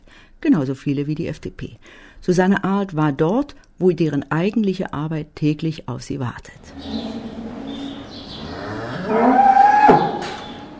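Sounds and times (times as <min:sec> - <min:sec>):
speech: 0:00.4 - 0:07.2, 0:09.1 - 0:10.0
dairy cow mooing in a barn: 0:06.7 - 0:10.7.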